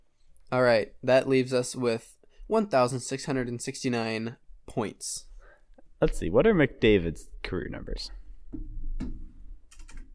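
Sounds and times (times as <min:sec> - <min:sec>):
speech: 0:00.5 - 0:05.3, 0:06.0 - 0:08.7
loud computer keyboard keystrokes: 0:09.7 - 0:10.1.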